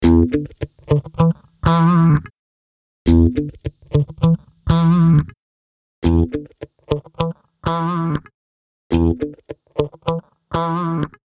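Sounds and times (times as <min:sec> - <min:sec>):
electric guitar with EQ and drive: 0:00.0 - 0:02.3, 0:03.1 - 0:05.3, 0:06.0 - 0:08.3, 0:08.9 - 0:11.2.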